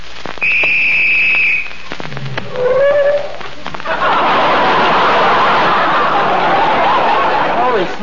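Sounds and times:
shrill police-style whistle blast: 0.4s - 1.7s
laughter: 3.8s - 8.0s.

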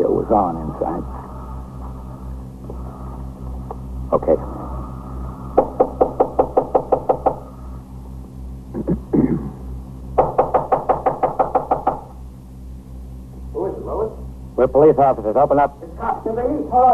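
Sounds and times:
steady low hum: 0.0s - 16.9s
speech: 0.2s - 1.3s, 4.1s - 4.6s, 14.6s - 16.9s
axes pounding on a fourth-floor door lock: 5.6s - 7.5s, 10.2s - 12.2s.

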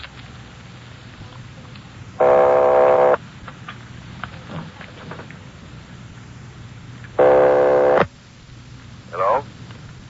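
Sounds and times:
telephone line noise hiss: 0.0s - 10.0s
telephone line ring tones through an earpiece: 2.2s - 3.2s, 7.2s - 8.1s.

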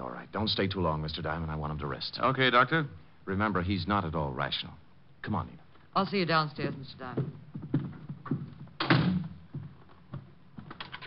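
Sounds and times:
speech: 0.3s - 7.4s
door shutting with a thud: 8.8s - 9.4s.

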